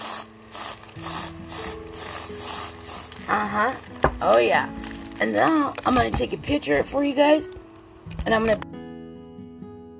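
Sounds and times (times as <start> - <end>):
alcoholic whipped cream aerosol can spraying onto an ice cream cone: 0.0 - 3.7
speech: 1.0 - 1.6, 3.3 - 7.6, 8.2 - 8.7.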